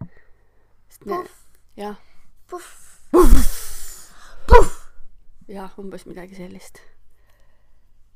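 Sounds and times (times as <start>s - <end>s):
speech: 1.0s - 3.6s, 5.5s - 7.0s
voice imitating a hot pancake pan doused with water in a sink: 2.6s - 4.9s.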